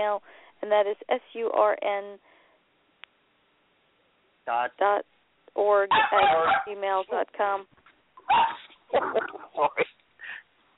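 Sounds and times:
speech: 0:00.0 - 0:02.3, 0:04.5 - 0:09.9
dog barking: 0:05.9 - 0:06.8, 0:08.2 - 0:09.2.

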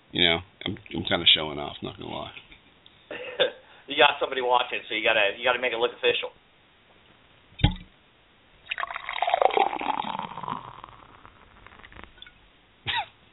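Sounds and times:
speech: 0:00.1 - 0:02.4, 0:03.4 - 0:06.4
drink pouring: 0:08.6 - 0:12.4.

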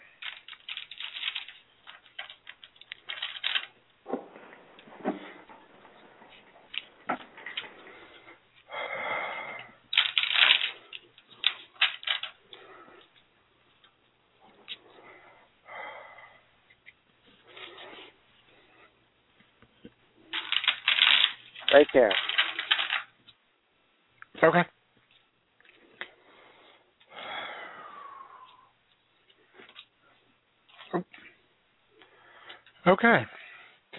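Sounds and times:
deck of tarot cards being shuffled: 0:00.2 - 0:05.5, 0:10.0 - 0:12.4, 0:20.4 - 0:23.1
speech: 0:21.8 - 0:22.2, 0:24.4 - 0:24.7, 0:33.0 - 0:33.4.

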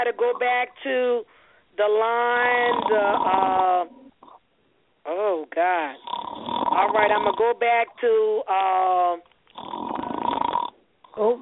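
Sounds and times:
speech: 0:00.0 - 0:04.0, 0:05.0 - 0:09.3, 0:11.2 - 0:11.4
person snoring loudly on a phone line: 0:02.6 - 0:03.6, 0:06.0 - 0:07.3, 0:09.5 - 0:10.8.

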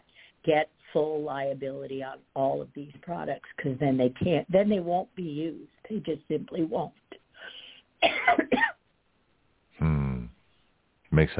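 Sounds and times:
speech: 0:00.4 - 0:07.0, 0:11.2 - 0:11.3
person coughing sharply: 0:08.0 - 0:08.8
voiced rasping throat sound: 0:09.8 - 0:10.3.

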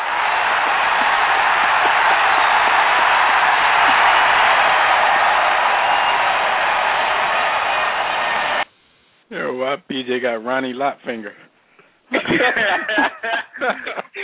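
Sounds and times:
crowd cheering: 0:00.0 - 0:08.6
speech: 0:09.6 - 0:11.5, 0:12.1 - 0:14.2
laughter: 0:12.1 - 0:14.2.

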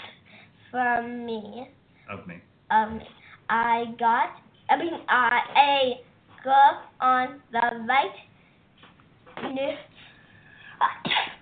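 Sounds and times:
speech: 0:00.7 - 0:08.3, 0:09.4 - 0:10.0, 0:10.8 - 0:11.3
person sneezing: 0:10.8 - 0:11.4.

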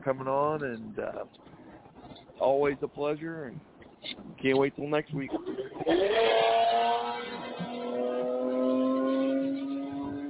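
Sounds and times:
speech: 0:00.0 - 0:01.5, 0:02.4 - 0:07.0
motorcycle engine revving: 0:05.8 - 0:10.2.

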